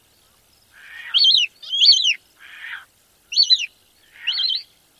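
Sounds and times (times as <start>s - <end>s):
juvenile squeals: 0.8s - 4.6s.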